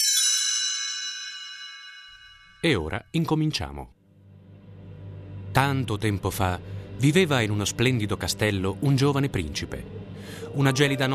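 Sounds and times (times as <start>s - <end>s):
small bell ringing to signal a page turn: 0.0s - 2.6s
speech: 2.6s - 4.0s, 5.6s - 11.1s.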